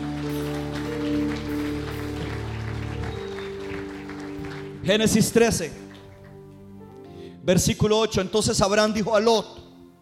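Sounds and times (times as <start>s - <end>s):
crowd applauding: 0.0s - 6.7s
held keyboard or organ chords: 0.0s - 10.0s
speech: 4.8s - 5.8s, 7.4s - 9.6s.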